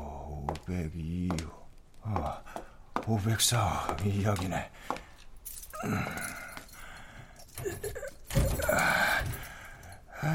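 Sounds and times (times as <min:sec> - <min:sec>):
speech: 0:00.5 - 0:02.4, 0:03.1 - 0:05.0, 0:05.8 - 0:06.4
keys rattling and scraping against a door lock: 0:05.2 - 0:10.1.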